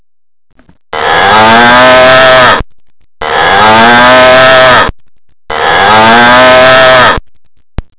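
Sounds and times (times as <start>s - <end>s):
cow mooing: 1.0s - 2.6s, 3.2s - 4.9s, 5.5s - 7.2s.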